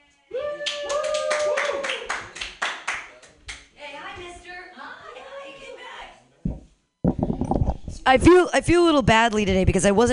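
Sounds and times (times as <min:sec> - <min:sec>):
person cheering woo: 0:00.3 - 0:02.3
audience applause: 0:00.6 - 0:03.7
speech: 0:08.1 - 0:10.1.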